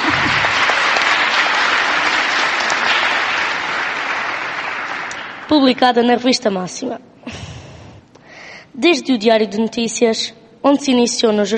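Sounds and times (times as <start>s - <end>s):
audience applauding at a journalism award ceremony: 0.0s - 5.6s
speech: 5.5s - 7.4s, 8.8s - 11.5s.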